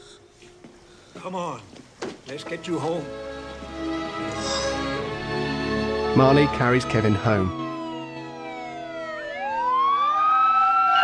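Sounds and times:
speech: 1.2s - 4.7s, 6.2s - 7.6s
police car sirens wailing as two police cars pull up across a street: 6.1s - 11.0s.

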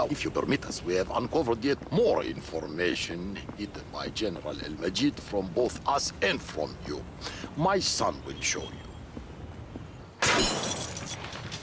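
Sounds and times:
speech: 0.0s - 8.9s
soldier smashing the lock on a barn: 10.2s - 11.6s.

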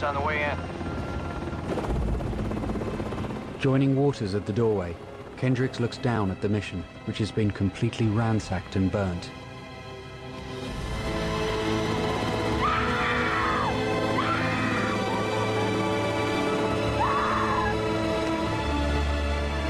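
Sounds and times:
speech: 0.0s - 0.9s, 3.6s - 9.4s
thick steady drone: 0.0s - 19.6s
muffled screams behind a covered mouth: 12.5s - 15.2s, 16.9s - 17.8s.

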